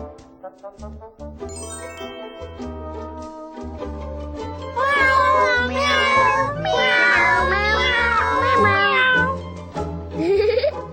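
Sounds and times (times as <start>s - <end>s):
cat meowing: 4.7s - 9.4s.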